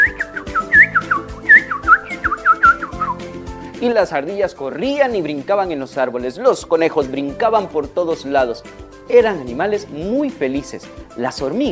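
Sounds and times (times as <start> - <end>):
person whistling a warbling imitation of birds singing in a forest: 0.0 - 3.2
speech: 3.8 - 11.7.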